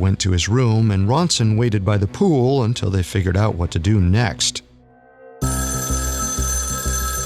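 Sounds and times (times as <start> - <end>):
speech: 0.0 - 4.6
telephone ringing: 5.4 - 7.2.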